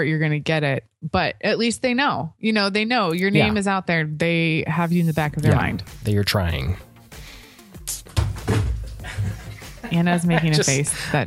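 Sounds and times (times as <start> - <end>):
speech: 0.0 - 6.9, 9.9 - 11.2
water jug knocked over: 8.1 - 9.4
laughter: 8.8 - 11.2.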